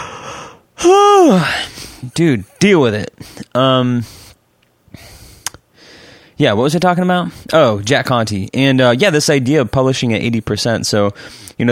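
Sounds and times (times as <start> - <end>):
loud human yawn: 0.0 - 1.8
speech: 0.8 - 4.3, 6.4 - 11.7.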